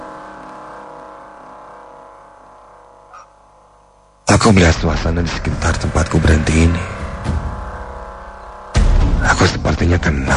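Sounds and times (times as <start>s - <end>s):
speech: 4.4s - 7.4s, 9.4s - 10.3s
car engine humming as the car pulls up and stops: 4.6s - 9.3s.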